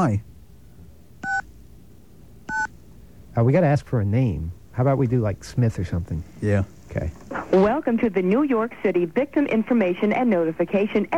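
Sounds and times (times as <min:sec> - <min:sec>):
speech: 0:00.0 - 0:00.3, 0:03.4 - 0:11.1
low steady hiss: 0:00.0 - 0:11.1
touch-tone telephone keys dialing a number: 0:01.2 - 0:01.4, 0:02.5 - 0:02.7.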